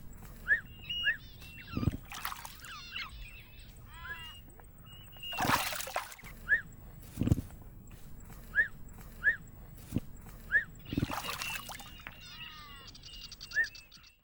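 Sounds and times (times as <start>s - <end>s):
ostrich call: 0.4s - 6.7s, 10.5s - 13.9s.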